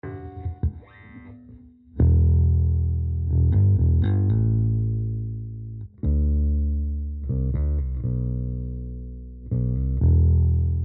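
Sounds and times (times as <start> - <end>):
bass guitar solo with no sustain: 0.0 - 10.8.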